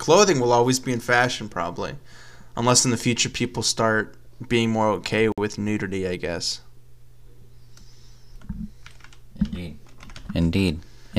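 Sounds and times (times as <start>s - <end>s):
speech: 0.0s - 6.7s, 9.5s - 11.1s
typing on a computer keyboard: 8.4s - 10.4s.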